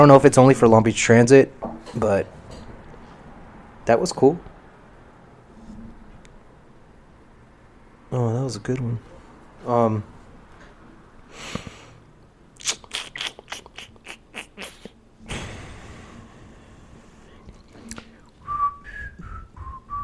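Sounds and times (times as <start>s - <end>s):
speech: 0.0s - 2.4s, 3.9s - 4.5s, 8.1s - 10.1s
person whistling short gliding notes: 18.4s - 20.0s.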